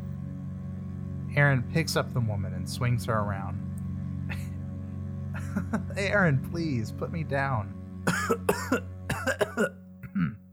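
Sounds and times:
low steady hum: 0:00.0 - 0:10.5
speech: 0:01.4 - 0:03.7, 0:05.6 - 0:10.4
woman coughing into a handkerchief: 0:08.1 - 0:10.4.

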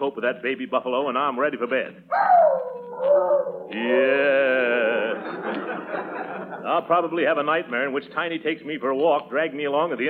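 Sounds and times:
speech: 0:00.0 - 0:05.6, 0:06.7 - 0:10.0
dog howling: 0:02.1 - 0:04.0
laughter: 0:03.8 - 0:07.0.

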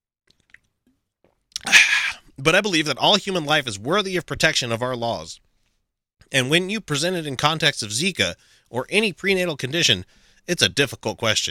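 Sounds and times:
wet mouth clicks while sipping water: 0:00.3 - 0:02.2
loud slurping gulp of water: 0:01.5 - 0:02.3
speech: 0:02.4 - 0:05.4, 0:06.2 - 0:11.4.

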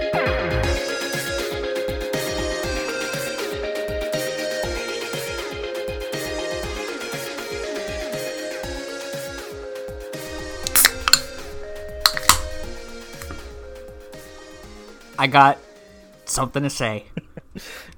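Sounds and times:
music: 0:00.0 - 0:16.9
fizzy hiss of sparkling water: 0:10.3 - 0:15.2
can of black raspberry sparkling water cracking open: 0:10.5 - 0:13.6
speech: 0:15.2 - 0:15.6, 0:16.3 - 0:17.7.

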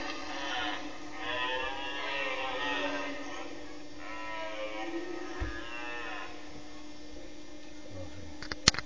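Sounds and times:
red deer bellowing during the rut: 0:00.0 - 0:06.6
steady low hum: 0:00.0 - 0:08.8.

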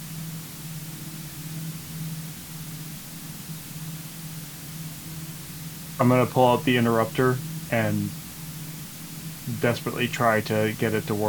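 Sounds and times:
faint low hum: 0:00.0 - 0:11.2
radio static: 0:06.0 - 0:08.2, 0:09.5 - 0:11.2
speech: 0:06.0 - 0:08.2, 0:09.5 - 0:11.2.

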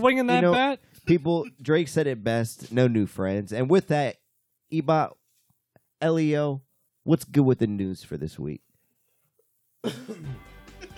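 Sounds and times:
speech: 0:00.0 - 0:05.2, 0:06.0 - 0:08.6, 0:09.8 - 0:10.5
person clearing throat: 0:09.8 - 0:10.9.

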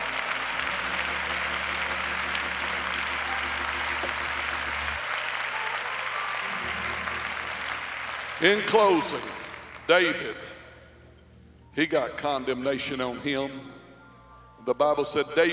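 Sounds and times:
audience clapping hands: 0:00.0 - 0:10.5
low droning musical tones: 0:00.0 - 0:15.5
speech: 0:08.4 - 0:09.3, 0:09.9 - 0:10.5, 0:11.8 - 0:13.8, 0:14.6 - 0:15.5.

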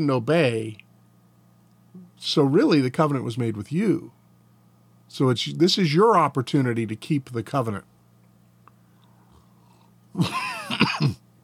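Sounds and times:
speech: 0:00.0 - 0:00.8, 0:02.0 - 0:04.2, 0:05.1 - 0:07.9, 0:10.2 - 0:11.2
harsh sputtering cough after accidentally inhaling coffee: 0:10.2 - 0:11.2.

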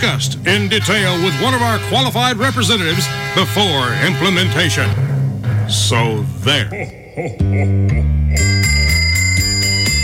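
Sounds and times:
speech: 0:00.0 - 0:05.1, 0:05.7 - 0:09.0
Salvation Army handbell ringing: 0:08.3 - 0:10.0.

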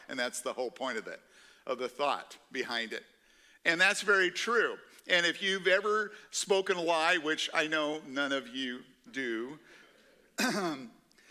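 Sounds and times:
speech: 0:00.1 - 0:09.8, 0:10.4 - 0:11.0
throat clearing: 0:10.4 - 0:10.9.

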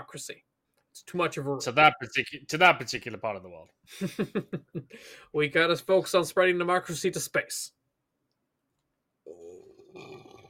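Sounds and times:
speech: 0:00.1 - 0:07.8
person burping with a loud low croaky belch: 0:09.2 - 0:10.4.

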